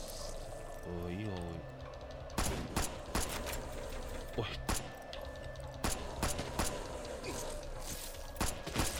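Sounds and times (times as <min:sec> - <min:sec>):
video game noise: 0:00.0 - 0:08.9
speech: 0:00.9 - 0:01.7, 0:04.4 - 0:04.8
pistol gunfire in a video game: 0:02.4 - 0:03.6, 0:05.8 - 0:07.0, 0:08.4 - 0:08.9.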